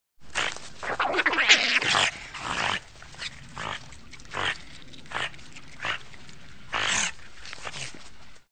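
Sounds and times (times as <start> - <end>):
otter: 0.3 - 8.4.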